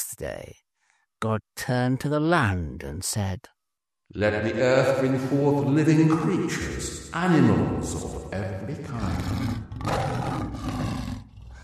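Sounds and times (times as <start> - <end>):
speech: 0.2 - 0.6, 1.2 - 11.1
lion roaring: 8.9 - 11.6.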